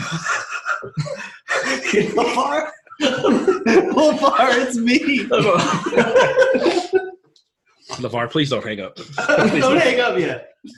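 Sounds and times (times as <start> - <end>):
heavy ragged breathing into the microphone: 0.0 - 2.0
laughter: 0.0 - 7.3, 9.0 - 10.7
speech: 0.1 - 0.4, 1.9 - 6.8, 7.9 - 10.7.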